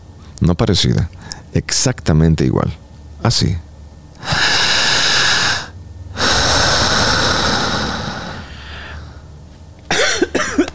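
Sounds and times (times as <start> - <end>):
speech: 0.4 - 3.6
loud rushing breaths during a hypnosis breathing exercise: 4.2 - 9.3
person coughing and clearing the throat: 9.9 - 10.7.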